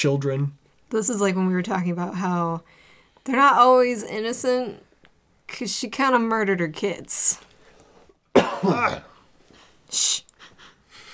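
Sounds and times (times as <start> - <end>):
speech: 0.0 - 4.9, 5.5 - 7.5, 8.6 - 9.1, 9.9 - 10.3
loud rough rasping cough: 8.3 - 9.1.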